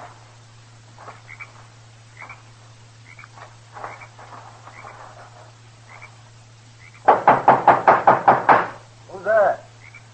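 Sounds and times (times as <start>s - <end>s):
faint noise: 0.0s - 10.1s
knocking on the wooden door of a small adobe hut: 7.0s - 8.8s.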